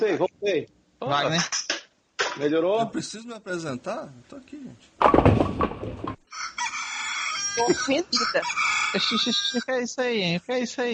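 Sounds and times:
speech: 0.0 - 1.8, 2.4 - 6.2, 7.6 - 10.9
rooster crow as an alarm clock tone: 6.3 - 9.7
laughter: 7.6 - 9.7.

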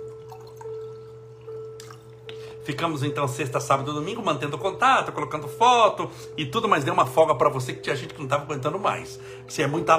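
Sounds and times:
water poured into a drinking glass: 0.0 - 2.2
steady low electrical hum: 0.0 - 9.9
speech: 2.6 - 9.9.

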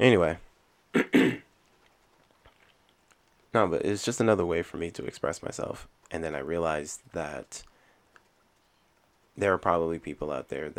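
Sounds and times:
speech: 0.0 - 1.4, 3.6 - 7.7, 9.4 - 10.7
coughing from allergies: 0.9 - 1.5.

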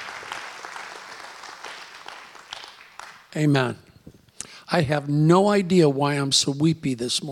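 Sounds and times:
audience applauding: 0.0 - 3.4
speech: 3.3 - 3.8, 4.7 - 7.3.

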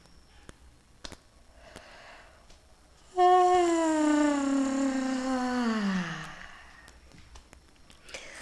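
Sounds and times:
long voiced yawn: 3.1 - 6.9.

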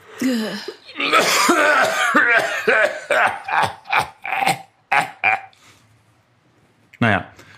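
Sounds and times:
speech: 0.2 - 4.1
voice imitating a wheezing smoker's cough: 1.0 - 5.5.

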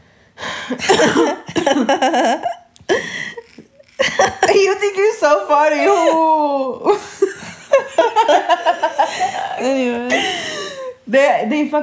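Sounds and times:
person having loud raspy coughing fits: 0.7 - 2.6
speech: 0.7 - 3.1, 4.2 - 7.2, 7.8 - 10.5, 11.1 - 11.8
laughter: 6.9 - 10.9.

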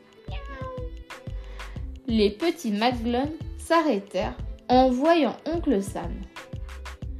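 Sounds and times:
very small farmyard cat giving a tiny thin meow: 0.3 - 1.0
speech: 2.1 - 6.3.

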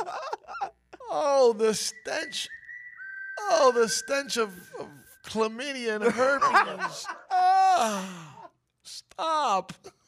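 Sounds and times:
speech: 1.2 - 2.6, 3.4 - 7.2, 7.8 - 10.0
high whistle sound effect: 1.2 - 7.0
voices and giggling: 6.0 - 7.5.

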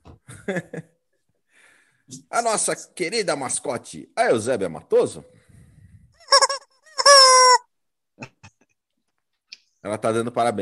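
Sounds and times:
speech: 0.5 - 0.9, 2.1 - 5.4, 9.9 - 10.5
young hen calling: 6.2 - 7.6.

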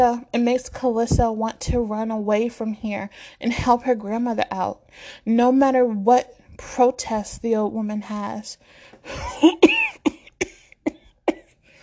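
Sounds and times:
speech: 0.0 - 9.9
elderly woman coughing: 9.1 - 11.6.

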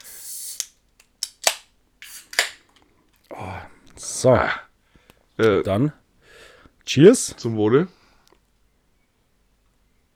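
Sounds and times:
beer can being opened: 0.0 - 2.6
speech: 3.3 - 4.6, 5.4 - 6.0, 6.9 - 8.0.

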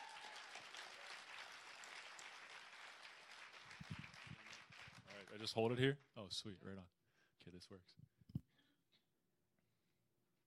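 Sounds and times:
crowd applause: 0.0 - 5.6
speech: 5.2 - 8.2.

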